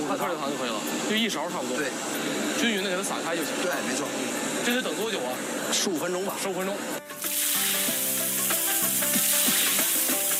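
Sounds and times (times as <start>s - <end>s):
speech: 0.1s - 7.1s
pork belly slices sizzling in hot oil: 7.1s - 10.3s.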